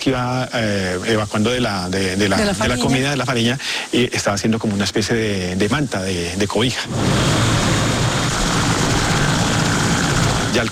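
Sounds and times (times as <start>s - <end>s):
speech: 0.0s - 7.6s, 10.6s - 10.7s
helicopters flying overhead with engine drone and rotor thump: 7.7s - 10.5s.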